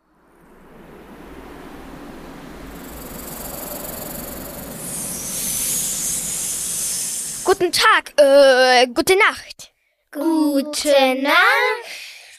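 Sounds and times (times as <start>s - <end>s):
airy hiss in a sandy desert at night: 0.1s - 8.7s
speech: 7.5s - 12.0s.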